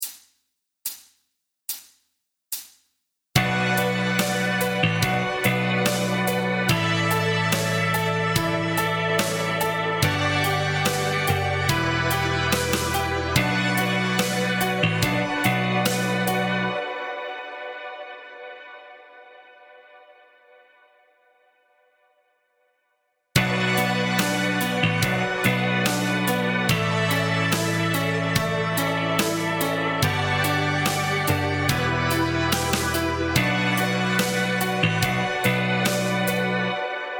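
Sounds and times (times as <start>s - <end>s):
guitar chord inversion exercises backing track: 3.4s - 16.8s, 23.4s - 37.0s.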